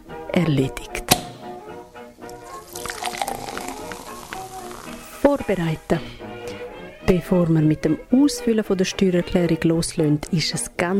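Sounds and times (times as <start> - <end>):
speech: 0.4 - 1.0, 5.3 - 6.2, 7.1 - 10.9
water pouring from a watering can onto flowers: 2.3 - 5.2.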